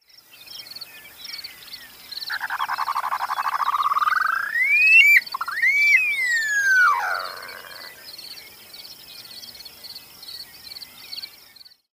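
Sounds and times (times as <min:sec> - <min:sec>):
Upland Sandpiper Bartramia longicauda: 0:02.6 - 0:08.0.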